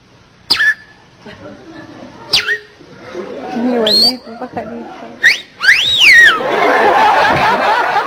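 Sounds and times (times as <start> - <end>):
person whistling bird-like chirps and trills imitating a flirtatious female bird: 0.5 - 0.9, 2.3 - 2.7, 5.2 - 6.4
laughter: 6.3 - 8.0.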